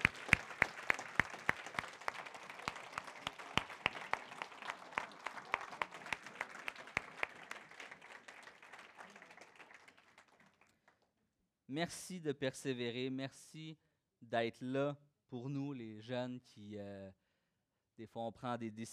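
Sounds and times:
sharp distinct claps: 0.0s - 7.3s
room full of people applauding: 0.0s - 11.0s
speech: 11.7s - 17.2s, 18.0s - 18.9s.

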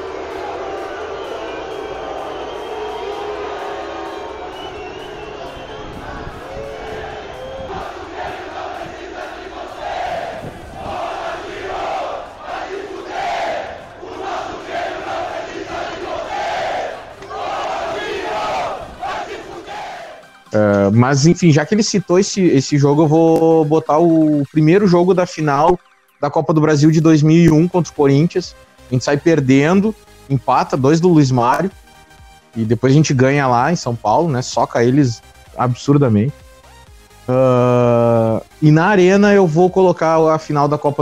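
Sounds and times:
huge stadium crowd booing loudly: 0.0s - 20.3s
speech: 20.9s - 31.8s, 32.5s - 36.4s, 37.3s - 37.9s, 38.6s - 41.0s.

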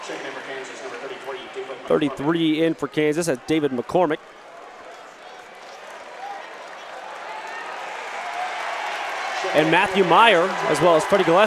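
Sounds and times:
speech: 1.9s - 4.4s, 9.6s - 11.4s
big crowd at a basketball game in Waco roaring and cheering: 1.9s - 11.4s.

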